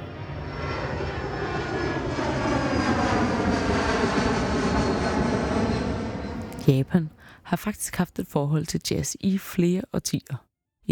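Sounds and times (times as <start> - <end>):
airplane engine during a flight: 0.0 - 7.4
speech: 6.7 - 10.8.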